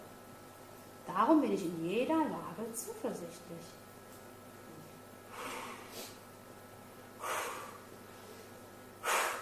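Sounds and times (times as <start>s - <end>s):
speech: 1.1s - 3.8s
deep breaths in: 5.3s - 6.2s, 7.2s - 9.4s.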